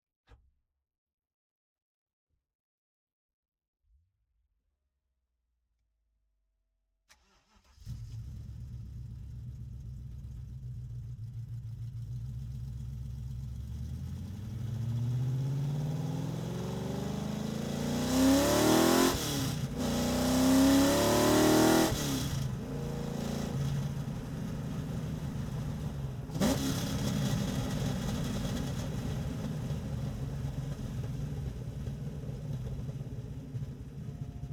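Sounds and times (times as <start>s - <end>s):
1972 De Tomaso Pantera BMW Alpina V8 engine starting, driving and shutting down: 7.1s - 34.5s.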